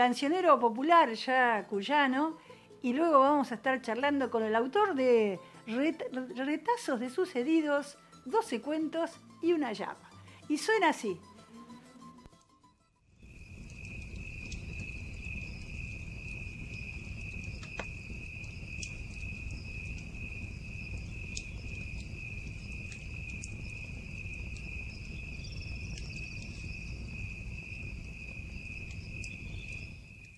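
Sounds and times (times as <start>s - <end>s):
speech: 0.0s - 11.3s
crickets chirping at night beside a lit campfire: 13.2s - 30.3s.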